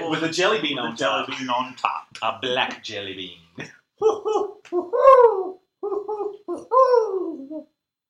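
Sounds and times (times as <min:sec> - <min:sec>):
speech: 0:00.1 - 0:05.3
person imitating owl hooting: 0:04.0 - 0:07.7.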